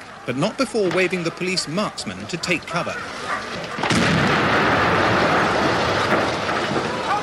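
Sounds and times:
speech: 0.2 - 4.7
demolition charge blast: 3.7 - 7.2.

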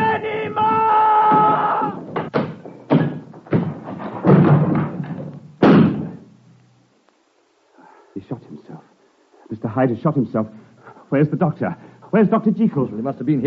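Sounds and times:
door being smashed in: 0.3 - 6.2
speech: 9.8 - 13.4.

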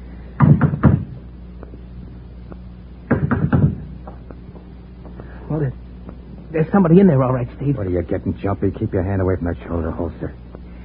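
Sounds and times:
firm knocking on a house's front door: 0.4 - 1.1, 3.1 - 3.8
speech: 5.6 - 5.8, 6.5 - 10.4.

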